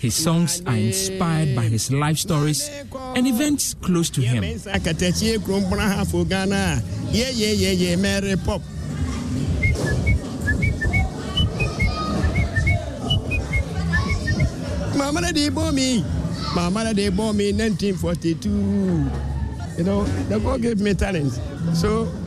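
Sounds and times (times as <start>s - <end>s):
speech: 0.0s - 8.8s, 15.0s - 22.2s
whistled melody sliding up and down: 9.6s - 14.6s.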